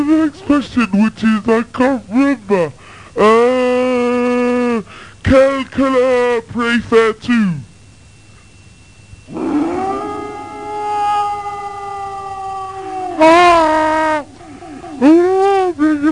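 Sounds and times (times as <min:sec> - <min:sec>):
speech: 0:00.1 - 0:03.7, 0:04.8 - 0:07.6
dog howling: 0:09.3 - 0:15.8.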